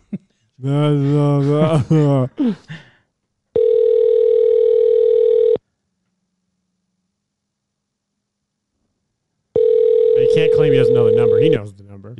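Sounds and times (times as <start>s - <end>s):
speech: 0.1s - 2.8s, 10.4s - 12.1s
telephone dial tone: 3.6s - 5.6s, 9.6s - 11.5s.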